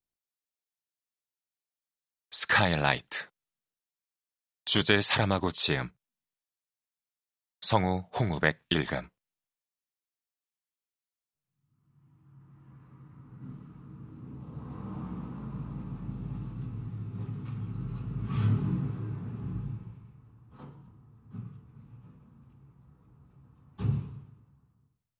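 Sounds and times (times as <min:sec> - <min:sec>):
speech: 0:02.4 - 0:03.3, 0:04.7 - 0:06.0, 0:07.6 - 0:09.1
car tires rumbling and jolting over an uneven road with knocks and thuds: 0:12.4 - 0:23.8.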